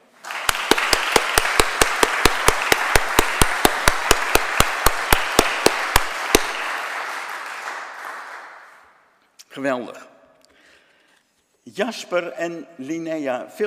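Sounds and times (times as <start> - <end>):
audience applause: 0.0 - 8.8
speech: 9.6 - 10.1, 11.7 - 13.6.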